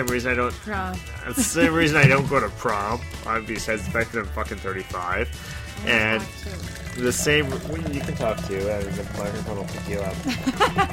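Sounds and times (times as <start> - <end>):
speech: 0.0 - 10.9
laughter: 1.2 - 2.5, 8.0 - 10.9
woman pouring wine into a glass: 5.4 - 10.6.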